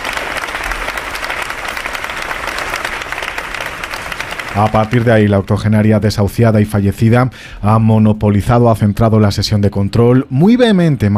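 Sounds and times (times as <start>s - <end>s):
sustained applause from a group: 0.0s - 5.4s
speech: 4.6s - 11.1s.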